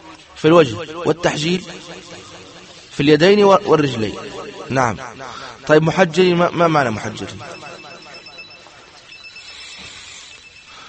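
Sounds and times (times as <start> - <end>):
speech: 0.4 - 2.4, 3.0 - 7.6
telephone ringing: 7.2 - 10.8.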